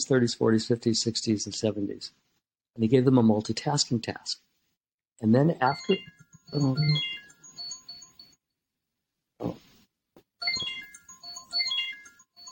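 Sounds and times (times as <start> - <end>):
speech: 0.0 - 4.5, 5.2 - 7.2
phone ringtone playing electronic melody: 5.6 - 8.4, 10.4 - 12.5.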